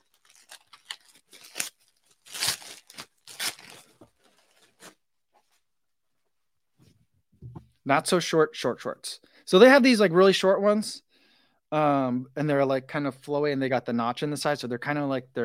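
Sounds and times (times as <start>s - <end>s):
plastic packaging bag being torn open: 0.0s - 5.0s
speech: 7.9s - 11.0s, 11.7s - 15.4s.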